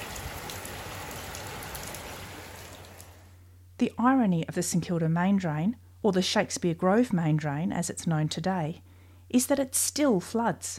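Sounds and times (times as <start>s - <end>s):
heavy rain: 0.0s - 3.4s
speech: 3.8s - 10.7s.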